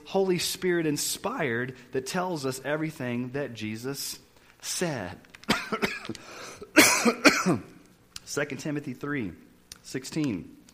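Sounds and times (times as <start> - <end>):
speech: 0.1 - 7.7, 8.3 - 10.6
man preaching a sermon coughing: 5.5 - 7.8.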